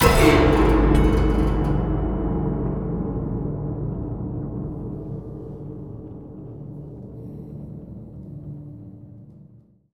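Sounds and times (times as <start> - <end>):
cinematic metal impacts: 0.0 - 6.3.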